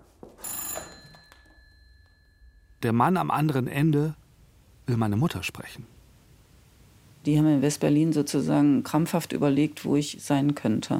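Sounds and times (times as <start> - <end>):
telephone bell ringing in a private room: 0.3 - 2.8
speech: 2.8 - 4.2, 4.9 - 6.0, 7.2 - 10.9.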